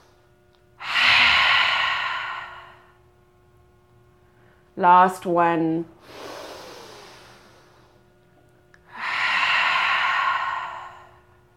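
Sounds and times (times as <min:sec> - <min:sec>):
yoga breathing: 0:00.8 - 0:03.0, 0:06.0 - 0:08.0, 0:08.8 - 0:11.4
speech: 0:04.8 - 0:06.2.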